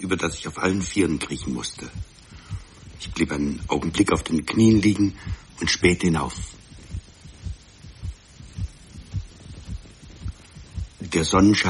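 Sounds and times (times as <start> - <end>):
speech: 0.0 - 2.2, 3.0 - 6.6, 11.2 - 11.6
pounding heartbeat of someone climbing a steep icy slope: 1.8 - 11.1.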